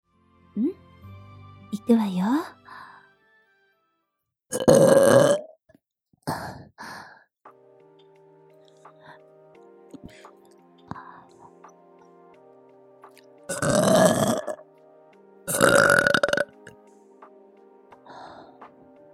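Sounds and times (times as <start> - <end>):
speech: 0.6 - 0.8, 1.7 - 2.6
woman burping: 4.5 - 5.6, 13.5 - 14.6, 15.5 - 16.5.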